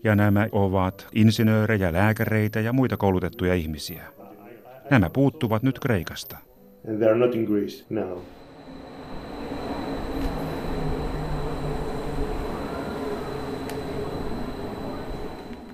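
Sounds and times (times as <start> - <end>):
speech: 0.0 - 4.2, 4.9 - 8.4
faint electrical whine of a metro train: 6.4 - 15.7
metro train in motion heard from inside the carriage in Athens Greece: 8.2 - 15.7.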